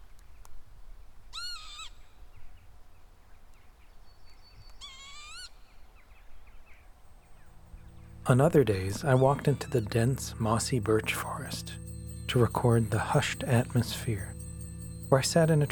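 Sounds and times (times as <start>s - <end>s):
northern lapwing calls: 1.3s - 2.0s, 4.8s - 5.7s, 7.2s - 15.7s
soft low outdoor rumble: 7.0s - 15.7s
speech: 8.3s - 14.3s, 15.1s - 15.7s.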